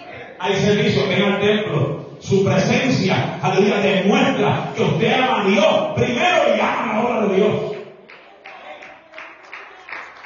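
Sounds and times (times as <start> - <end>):
speech: 0.4 - 7.7
audience clapping in a steady rhythmic beat: 7.4 - 10.2.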